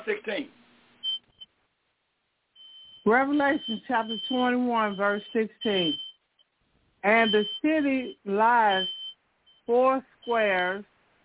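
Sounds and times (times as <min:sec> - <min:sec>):
speech: 0:00.0 - 0:00.6, 0:03.0 - 0:06.0, 0:07.0 - 0:09.0, 0:09.7 - 0:10.9
smoke detector chirp: 0:02.6 - 0:06.5, 0:07.1 - 0:10.8.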